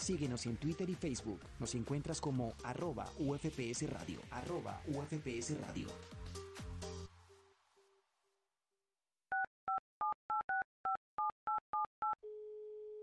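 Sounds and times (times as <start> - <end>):
speech: 0.0 - 6.4
telephone keypad dialing dual-tone beeps: 9.3 - 12.2
steady unbroken phone tone: 9.3 - 13.0.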